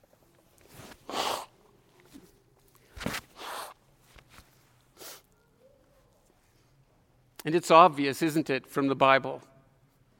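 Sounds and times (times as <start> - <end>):
person blowing nose: 0.9 - 1.6, 3.3 - 3.8, 5.0 - 5.3
speech: 7.4 - 9.5.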